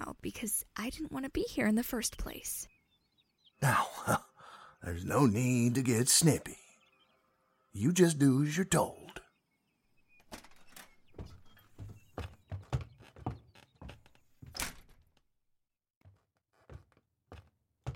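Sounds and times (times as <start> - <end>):
speech: 0.2 - 2.7, 3.6 - 6.6, 7.7 - 9.2
guest room door thumps and clunks while being opened: 10.2 - 15.3.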